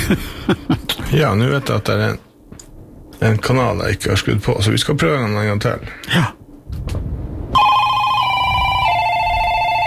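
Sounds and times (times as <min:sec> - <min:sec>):
speech: 0:00.1 - 0:02.3, 0:03.2 - 0:06.4
loud continuous electronic telephone ringing signal in a call-in quiz: 0:07.6 - 0:09.8.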